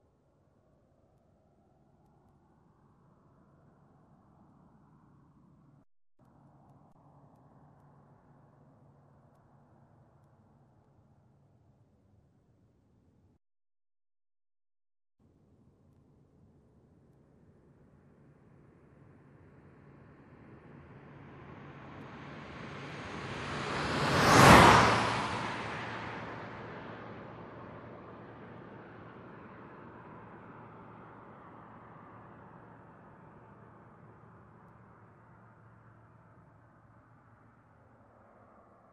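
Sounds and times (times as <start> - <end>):
car passing by fast: 21.0 - 34.1.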